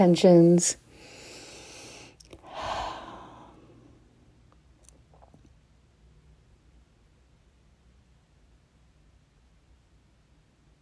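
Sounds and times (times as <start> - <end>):
deep breath drawn in during guided breathing practice: 0.9 - 4.0.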